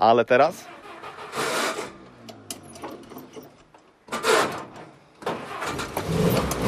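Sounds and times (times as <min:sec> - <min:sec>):
old car engine cranking with foot-operated starter and idling: 0:00.5 - 0:03.2, 0:04.0 - 0:06.6.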